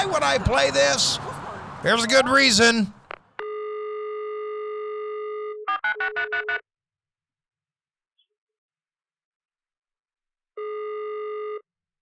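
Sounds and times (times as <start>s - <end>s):
speech: 0.0s - 3.0s
steady electronic telephone tone as a call is placed: 3.4s - 5.7s, 10.6s - 11.7s.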